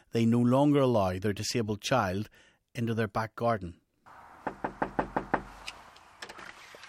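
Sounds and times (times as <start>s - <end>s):
speech: 0.1s - 3.8s
firm knocks on a front door: 4.4s - 5.6s
shuffling sounds: 6.4s - 6.8s.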